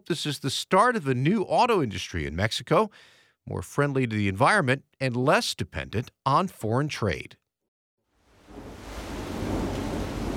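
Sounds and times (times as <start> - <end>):
speech: 0.0 - 7.4
heavy pouring rain: 8.2 - 10.3
deep rumble of thunder: 8.4 - 10.3.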